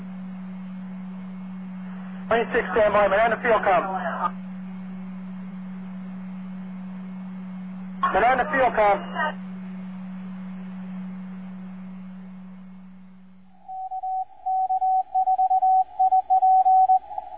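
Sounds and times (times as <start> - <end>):
low hum: 0.0 - 17.3
amateur radio static: 1.7 - 13.2
speech: 2.3 - 4.4, 8.1 - 9.5
Morse code call sign beeps over amateur radio: 13.9 - 17.1.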